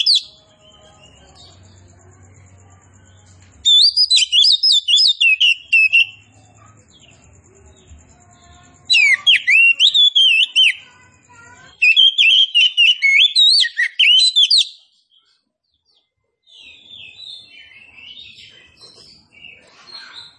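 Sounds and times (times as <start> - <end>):
Oriental magpie-robin singing vigorously with whistles and trills: 0.0 - 1.9, 2.7 - 7.9, 8.5 - 15.4, 16.4 - 20.3.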